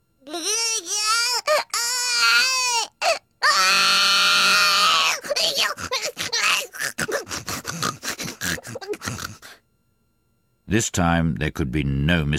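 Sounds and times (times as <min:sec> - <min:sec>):
baby wailing in long rising cries: 0:00.3 - 0:09.6
speech: 0:10.7 - 0:12.3.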